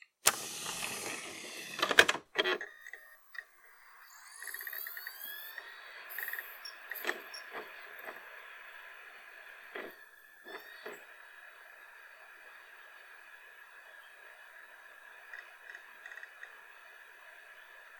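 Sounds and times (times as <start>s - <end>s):
disk tray closing: 0.2s - 8.9s.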